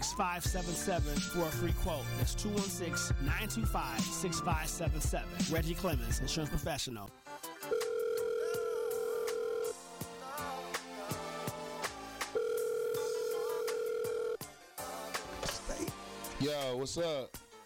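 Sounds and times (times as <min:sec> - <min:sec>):
busy beat: 0:00.0 - 0:06.5, 0:09.2 - 0:12.6, 0:13.3 - 0:17.6
speech: 0:00.2 - 0:07.4, 0:16.4 - 0:17.4
phone line ringing with electronic ring tones on the caller's end: 0:07.6 - 0:09.8, 0:12.4 - 0:14.4.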